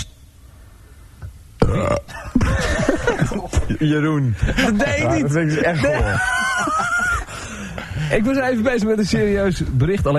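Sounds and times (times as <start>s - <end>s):
loud burps on air during a radio broadcast: 1.6s - 2.6s
laughter: 2.1s - 8.0s
speech: 3.1s - 7.0s, 8.1s - 10.1s.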